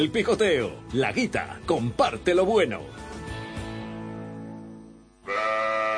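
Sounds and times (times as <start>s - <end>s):
speech: 0.0s - 3.1s
sheep bleating: 5.2s - 5.9s.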